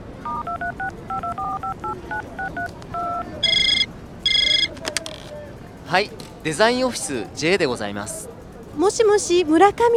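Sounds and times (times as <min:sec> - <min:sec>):
two-tone phone keypad beeps: 0:00.2 - 0:04.7
speech: 0:05.9 - 0:09.9.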